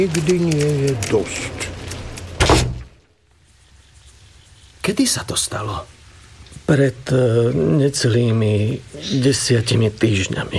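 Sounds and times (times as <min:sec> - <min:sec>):
speech: 0:00.0 - 0:01.7, 0:04.9 - 0:06.0, 0:06.7 - 0:10.5
door pushed shut and locked: 0:02.4 - 0:02.9.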